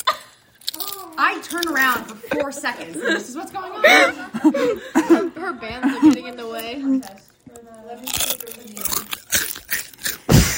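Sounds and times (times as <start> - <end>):
someone chomping while eating a crunchy chip: 0.0 - 2.1, 6.5 - 10.5
speech: 1.2 - 7.3, 7.9 - 8.8
laughter: 1.9 - 6.6.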